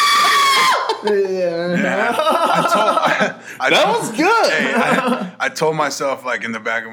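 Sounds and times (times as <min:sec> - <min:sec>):
person imitating a scream: 0:00.0 - 0:02.1
laughter: 0:00.0 - 0:05.4
speech: 0:01.0 - 0:06.9.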